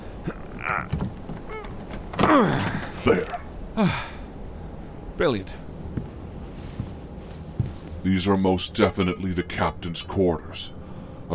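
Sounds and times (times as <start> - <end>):
strained wooden creaks of a jammed boat cabin door: 0.3 - 3.5
dull knocks and thumps of a jammed boat cabin door being forced: 0.8 - 3.1
speech: 2.3 - 4.1, 5.2 - 5.7, 8.1 - 11.3.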